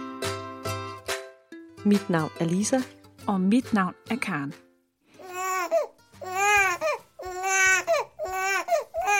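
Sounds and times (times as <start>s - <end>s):
speech: 1.8s - 4.6s
infant crying in rising-and-falling wails: 5.2s - 9.1s
infant's short gasping breaths: 6.5s - 9.1s.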